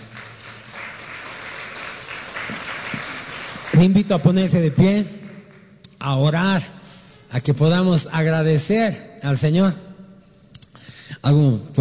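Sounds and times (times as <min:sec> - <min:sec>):
church audience applauding: 0:00.0 - 0:05.7
speech: 0:03.7 - 0:05.2, 0:06.0 - 0:09.8, 0:11.2 - 0:11.7.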